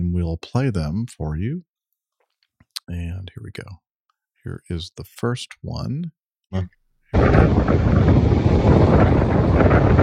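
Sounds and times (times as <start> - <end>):
speech: 0.2 - 1.7, 2.9 - 3.8, 4.4 - 10.0
wind buffeting a microphone up in a tower: 7.2 - 10.0.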